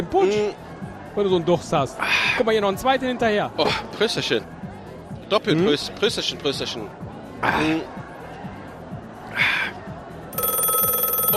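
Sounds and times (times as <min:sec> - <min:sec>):
speech: 0:00.0 - 0:00.6, 0:01.2 - 0:04.6, 0:05.3 - 0:08.0
low murmur: 0:00.0 - 0:11.3
telephone ringing with a steady electronic ringtone: 0:10.4 - 0:11.3.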